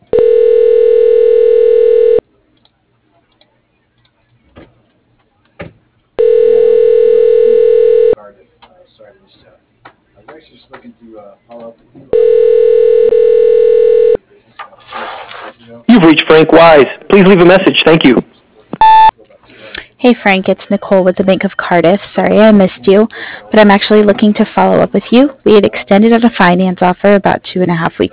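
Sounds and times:
telephone ringback tone while a call is transferred to voicemail: 0.1s - 2.2s, 6.2s - 8.2s, 12.1s - 14.2s
speech: 16.5s - 18.3s, 20.0s - 28.0s.

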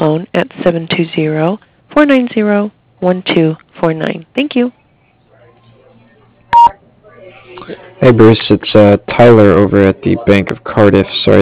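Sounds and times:
speech: 0.0s - 4.8s, 7.6s - 11.4s
voicemail beep from an answering machine: 6.5s - 6.7s.

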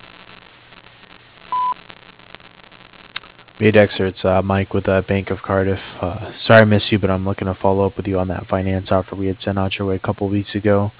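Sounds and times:
answering machine beep: 1.5s - 1.8s
faint telephone-line noise: 1.5s - 1.8s
speech: 3.6s - 10.9s.

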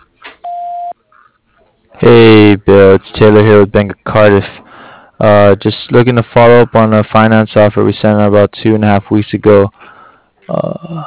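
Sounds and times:
voicemail beep over a telephone line: 0.4s - 1.0s
speech: 2.0s - 4.6s, 5.2s - 9.8s, 10.5s - 11.0s.

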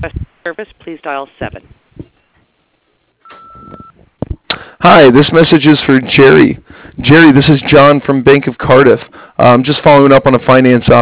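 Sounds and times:
speech: 0.0s - 1.8s, 4.8s - 10.9s
answering machine message tone beep on an office line: 3.2s - 4.0s.

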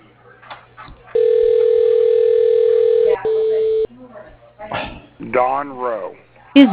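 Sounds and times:
steady phone tone of call transferred to voicemail: 1.2s - 3.9s
speech: 5.3s - 6.7s.

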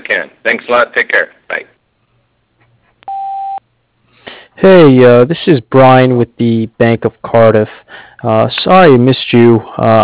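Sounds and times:
speech: 0.1s - 1.7s, 4.6s - 10.0s
answering machine beep: 3.1s - 3.6s.

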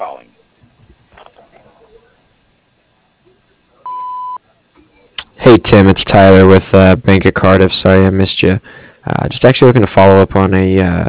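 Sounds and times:
speech: 0.0s - 0.4s, 5.5s - 11.0s
faint noise: 0.0s - 11.0s
voicemail recording tone: 3.9s - 4.4s.

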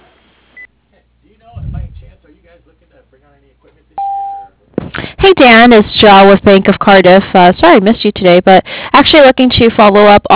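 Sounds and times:
talk: 0.9s - 4.0s
speech: 2.5s - 10.3s
voicemail beep: 4.0s - 4.5s.

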